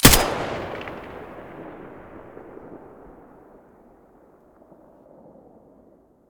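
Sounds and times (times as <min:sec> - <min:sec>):
M4A1 rifle muzzle blast: 0:00.0 - 0:03.1.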